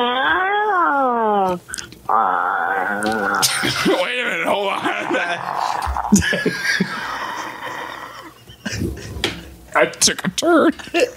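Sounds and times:
person imitating a cat meowing: 0.0s - 3.4s
laughter: 3.4s - 9.5s
speech: 9.8s - 11.1s.

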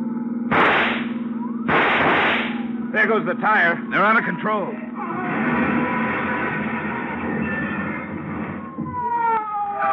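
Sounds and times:
steady low engine drone: 0.0s - 9.9s
rifle shots: 0.5s - 2.7s
speech: 3.0s - 4.8s.

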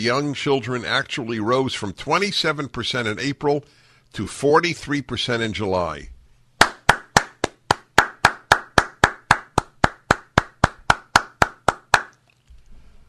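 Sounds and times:
speech: 0.0s - 6.1s
single pair of hands clapping: 6.6s - 12.2s.

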